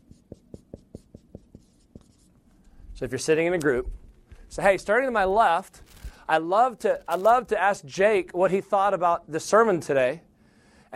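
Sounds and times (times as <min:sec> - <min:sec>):
pen writing on paper: 0:00.0 - 0:02.3
speech: 0:03.0 - 0:10.3.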